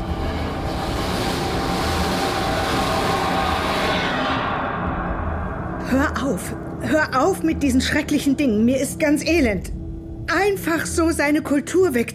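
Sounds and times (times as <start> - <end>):
train rushing closely past in a dark tunnel: 0.0 - 8.3
speech: 5.9 - 12.1.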